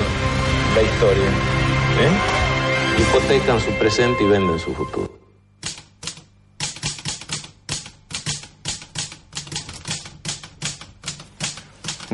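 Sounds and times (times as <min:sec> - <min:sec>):
speech: 0:00.8 - 0:02.4, 0:03.0 - 0:05.2
mechanical typewriter typing: 0:05.6 - 0:12.1.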